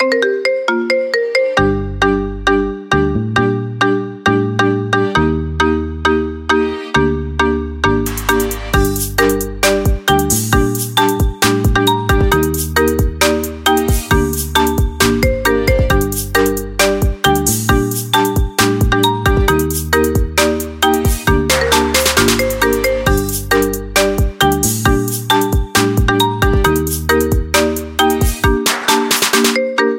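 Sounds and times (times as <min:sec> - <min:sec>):
marimba remix ringtone melody: 0:00.0 - 0:29.9.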